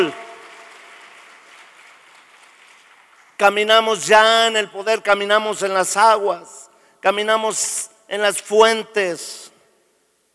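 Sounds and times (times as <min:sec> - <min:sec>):
crowd applauding during a sermon: 0:00.0 - 0:03.5
speech: 0:03.4 - 0:09.5.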